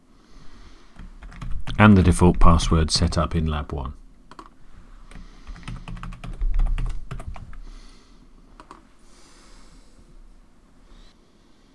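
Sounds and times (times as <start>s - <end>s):
typing on a computer keyboard: 1.0s - 1.8s, 4.3s - 4.5s, 5.1s - 7.6s, 8.6s - 8.8s
speech: 1.8s - 4.0s.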